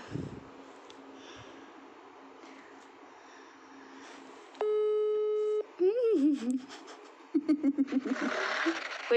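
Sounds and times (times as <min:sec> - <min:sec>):
phone call ringback tone: 0:04.6 - 0:05.7
laughter: 0:06.2 - 0:08.8.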